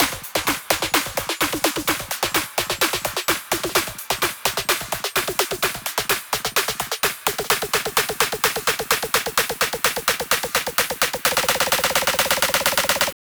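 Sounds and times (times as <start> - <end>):
house drum buildup loop: 0.0 - 13.2.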